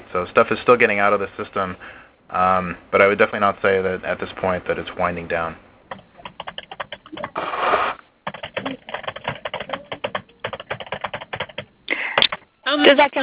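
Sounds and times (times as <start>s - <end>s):
speech: 0.1s - 5.7s, 12.9s - 13.2s
computer keyboard typing over a phone line: 5.9s - 7.4s, 8.2s - 12.4s.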